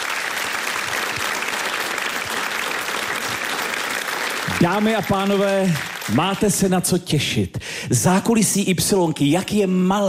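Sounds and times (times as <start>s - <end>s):
studio audience applauding: 0.0s - 6.6s
speech: 4.6s - 10.0s.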